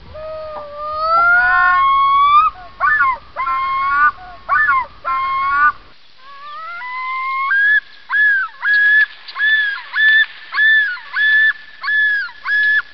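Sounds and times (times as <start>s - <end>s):
common loon yodel: 0.0s - 12.8s.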